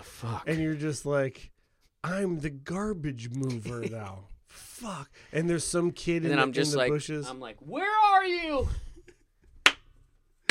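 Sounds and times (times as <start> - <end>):
speech: 0.1 - 8.9
laughter: 3.4 - 4.2
sharp crisp hand claps: 9.6 - 10.4.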